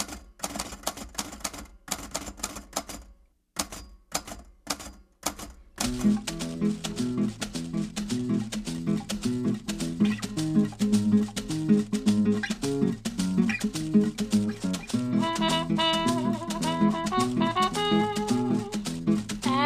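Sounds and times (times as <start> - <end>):
amplified antique typewriter keystrokes played as percussion: 0.0 - 19.6
guitar: 5.8 - 19.6
person singing: 15.2 - 19.6.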